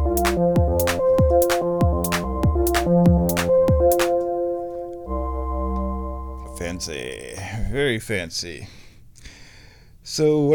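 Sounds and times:
punchy kick drums with quickly dropping pitch: 0.0s - 4.0s
bright high drum hits: 0.0s - 6.6s
gated synthesizer sequence of short chopped synth tones: 0.0s - 7.2s
speech: 6.8s - 8.8s, 10.2s - 10.5s.

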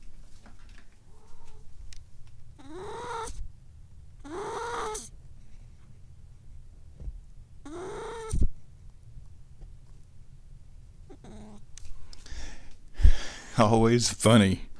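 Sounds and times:
low hum: 0.0s - 14.7s
cat yowling while pooping: 2.6s - 3.4s, 4.2s - 5.1s, 7.6s - 8.4s, 11.1s - 11.7s
speech: 13.6s - 14.7s.

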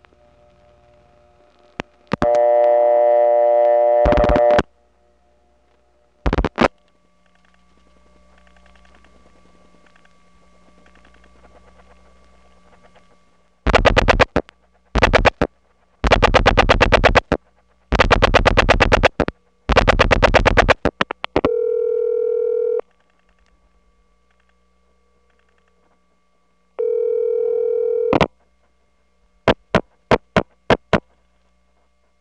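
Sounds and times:
faint hum on a telephone line: 0.0s - 32.1s
loud bursts of rapid clattering clicks: 13.7s - 21.4s
analog telephone ringback tone on a call over a wire cable trunk: 21.4s - 22.9s, 26.8s - 28.3s.

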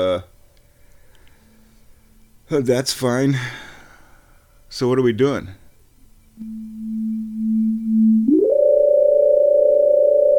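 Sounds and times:
speech: 0.0s - 0.3s, 2.5s - 3.6s, 4.7s - 5.6s, 6.4s - 6.7s
electronic synthesizer tones gliding from low hum to buzzy note: 6.4s - 10.3s.

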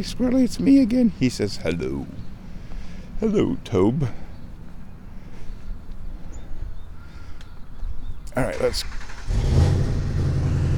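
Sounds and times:
speech: 0.0s - 2.2s, 3.2s - 4.2s, 8.4s - 9.6s
car engine rumbling as cars pass on a street: 8.4s - 10.7s.

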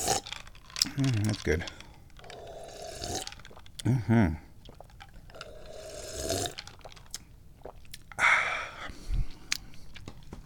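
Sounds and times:
breathy slurping sips of tea: 0.0s - 0.9s, 2.2s - 3.7s, 4.6s - 8.9s
soft mouth and swallowing noises: 0.0s - 8.2s
speech: 1.0s - 1.8s, 3.8s - 4.4s.

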